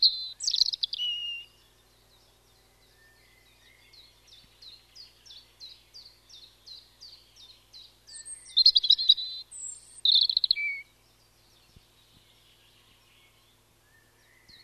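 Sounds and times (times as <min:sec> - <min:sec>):
European robin singing: 0:00.0 - 0:14.6.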